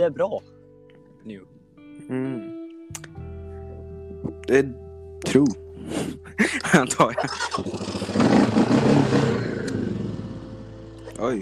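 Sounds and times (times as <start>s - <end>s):
speech: 0.0s - 0.6s, 1.2s - 3.1s, 4.2s - 8.5s, 11.2s - 11.4s
laughter: 6.2s - 8.2s
motorcycle engine revving: 7.2s - 11.0s.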